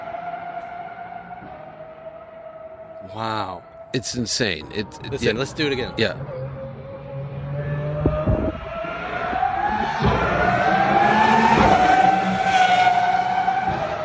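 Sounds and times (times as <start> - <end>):
speech: 3.0 - 6.4
high-pitched big V12 race car engine screaming through a pit lane: 4.7 - 14.0.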